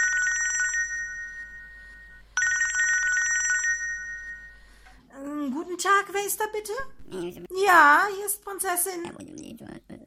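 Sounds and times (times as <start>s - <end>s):
mobile phone ringing with electronic trill: 0.0s - 4.8s
speech: 5.8s - 9.7s.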